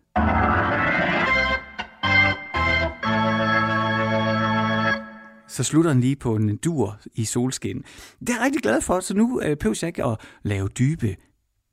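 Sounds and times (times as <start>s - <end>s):
short instrumental radio separator jingle: 0.1s - 5.5s
speech: 5.6s - 11.3s.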